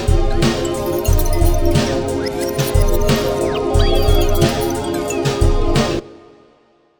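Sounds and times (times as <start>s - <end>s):
bizarre synthesizer loop: 0.2s - 5.8s.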